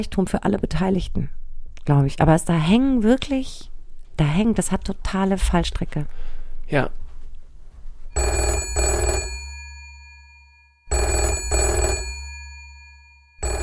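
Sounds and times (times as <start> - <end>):
speech: 0.0 - 7.0, 8.2 - 8.9
telephone ringing in double bursts: 8.2 - 13.6.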